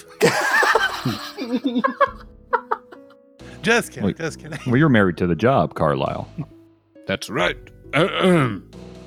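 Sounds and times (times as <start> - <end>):
laughter: 0.2 - 3.2
speech: 1.0 - 1.9, 3.6 - 6.5, 7.1 - 8.7
throat clearing: 8.0 - 8.6.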